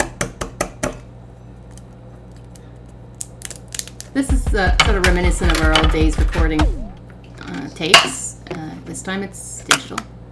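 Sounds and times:
eggs cracking into a bowl: 0:03.2 - 0:04.2
speech: 0:04.2 - 0:06.8, 0:07.7 - 0:10.1.

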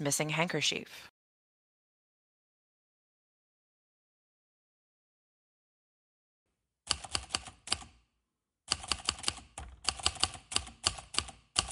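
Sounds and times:
speech: 0:00.0 - 0:01.1
keystrokes of someone typing: 0:06.9 - 0:08.0, 0:08.7 - 0:11.7.

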